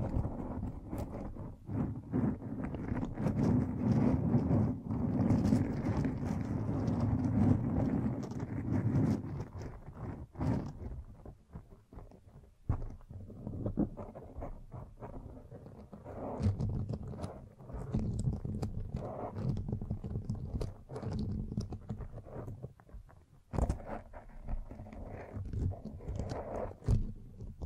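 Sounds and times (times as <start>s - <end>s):
microphone being brushed and scratched: 0.0s - 27.6s.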